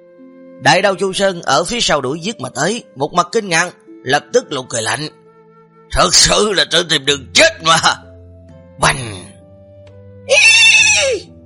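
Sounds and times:
speech: 0:00.6 - 0:05.2, 0:05.9 - 0:08.0, 0:08.8 - 0:09.1
horse neighing in fear: 0:10.3 - 0:11.3.

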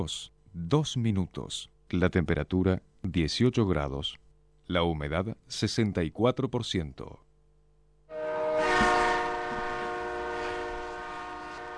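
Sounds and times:
speech: 0:00.0 - 0:07.2
train running on rails: 0:08.4 - 0:11.7.

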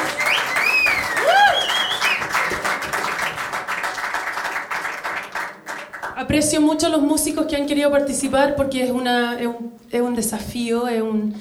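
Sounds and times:
audience clapping for a band at a jam session: 0:00.0 - 0:06.3
sharp rising whistles: 0:00.1 - 0:02.3
speech: 0:06.3 - 0:11.3.

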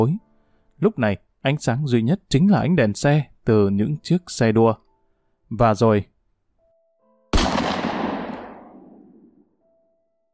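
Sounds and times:
speech: 0:00.0 - 0:00.2, 0:00.8 - 0:04.8, 0:05.5 - 0:06.1
live round gunshot fired at a container yard, echoing: 0:07.3 - 0:09.4.

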